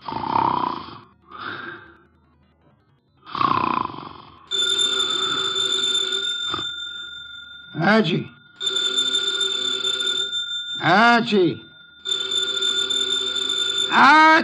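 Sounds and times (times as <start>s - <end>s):
heavy man snoring while dozing in a chair in an office: 0.0s - 1.8s, 3.3s - 4.4s
desk telephone bell ringing in an office: 4.5s - 14.4s
speech: 7.9s - 8.4s, 10.8s - 11.6s, 14.0s - 14.4s.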